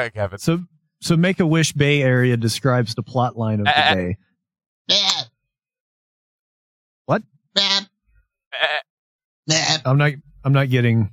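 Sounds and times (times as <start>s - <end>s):
speech: 0.0s - 4.3s, 4.9s - 5.3s, 7.1s - 7.7s, 9.5s - 11.1s
person imitating goat bleats: 3.6s - 4.0s, 4.9s - 5.3s, 8.6s - 8.8s, 9.5s - 9.9s.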